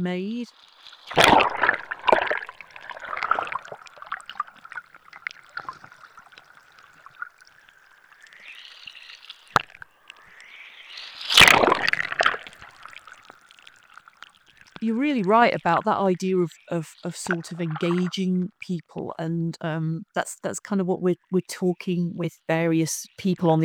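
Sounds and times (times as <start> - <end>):
speech: 0.0 - 1.7, 14.8 - 23.6
underwater gurgling and trickling sea water recorded by hydrophone: 0.5 - 18.2
loud underwater sloshing burst: 0.6 - 14.8.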